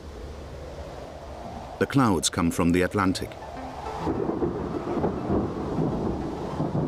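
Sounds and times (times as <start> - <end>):
steady heavy rain in the Bergisches Land, Germany: 0.0 - 6.8
speech: 1.8 - 4.7
deep continuous rumble of thunder: 3.8 - 6.8.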